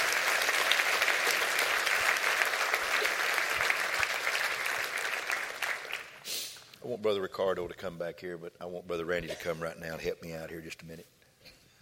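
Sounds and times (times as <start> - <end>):
audience clapping hands in applause: 0.0 - 6.3
speech: 6.9 - 11.2.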